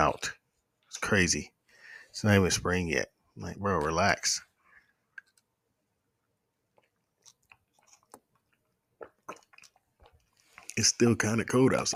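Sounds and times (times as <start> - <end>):
speech: 0.0 - 0.4, 1.0 - 1.6, 2.2 - 4.5, 10.8 - 11.9
person sipping water: 6.7 - 10.8
swallowing smacks: 6.7 - 10.8
wet mouth clicks: 6.8 - 10.8.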